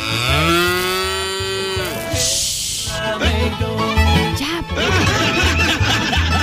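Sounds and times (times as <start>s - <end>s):
cow mooing: 0.0s - 3.0s
laughter: 3.0s - 6.4s.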